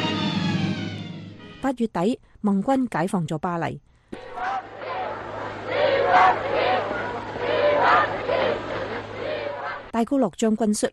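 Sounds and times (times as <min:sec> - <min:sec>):
speech: 0:01.6 - 0:04.7, 0:05.7 - 0:07.0, 0:09.9 - 0:10.9
large crowd cheering and shouting: 0:04.2 - 0:09.9.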